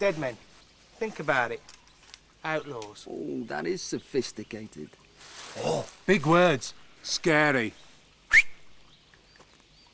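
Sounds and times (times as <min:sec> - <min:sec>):
speech: 0:00.0 - 0:01.8, 0:02.4 - 0:08.5
man whistling a signal: 0:08.3 - 0:08.6.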